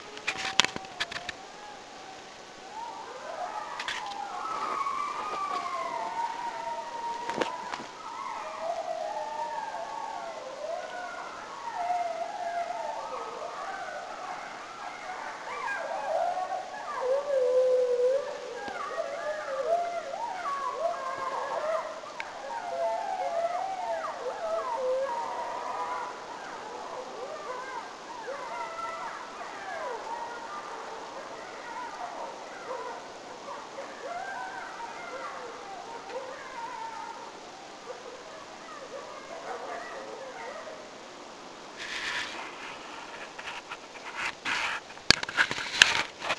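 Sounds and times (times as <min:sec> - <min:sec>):
adult and young wolves making various cries: 0:00.0 - 0:46.3.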